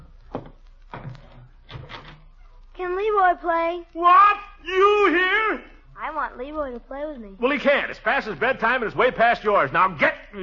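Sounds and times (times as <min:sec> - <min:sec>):
door being opened: 0:00.3 - 0:02.3
speech: 0:02.8 - 0:10.4.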